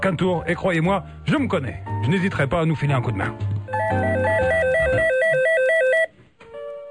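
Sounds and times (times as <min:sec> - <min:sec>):
speech: 0:00.0 - 0:05.2
telephone ringing with an electronic two-tone ringtone over bass-heavy backing: 0:03.7 - 0:06.1.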